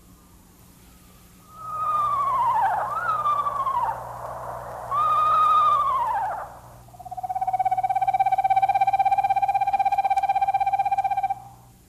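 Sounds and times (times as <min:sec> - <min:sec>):
faint low hum: 0:00.0 - 0:11.8
eastern screech owl whinnies and monotone trill: 0:01.2 - 0:11.7.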